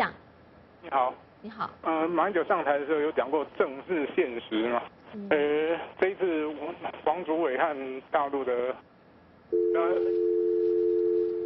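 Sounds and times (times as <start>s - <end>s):
speech: 0.8s - 8.9s, 9.5s - 10.4s
telephone busy tone after a caller's line disconnects: 9.5s - 11.4s.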